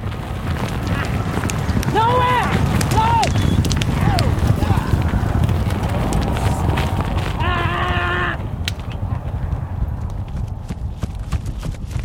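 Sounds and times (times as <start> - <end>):
Arabian horse hooves galloping in a circle on a rope: 0.0 - 12.0
wind noise: 0.0 - 12.0
person shouting: 1.9 - 3.3, 3.9 - 5.0, 7.4 - 8.4.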